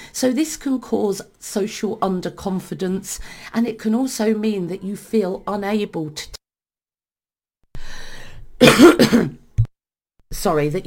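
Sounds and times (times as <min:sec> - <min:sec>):
speech: 0:00.2 - 0:06.4, 0:08.6 - 0:09.4, 0:10.4 - 0:10.8
harsh rapid coughs: 0:08.6 - 0:09.5.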